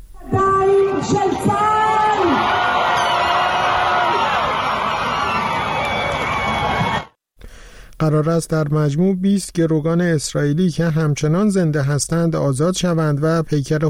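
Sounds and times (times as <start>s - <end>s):
large crowd cheering: 0.4s - 7.2s
speech: 8.0s - 13.8s.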